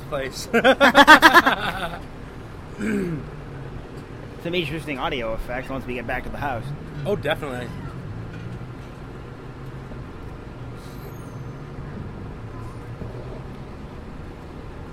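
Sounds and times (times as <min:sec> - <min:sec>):
city buses rumbling past on a busy street: 0:00.0 - 0:14.9
constant surrounding traffic noise: 0:00.0 - 0:14.9
speech: 0:00.1 - 0:02.2, 0:02.8 - 0:03.4, 0:04.4 - 0:07.8
laughter: 0:00.4 - 0:02.1
bus air-brake bursts hissing: 0:10.8 - 0:11.6.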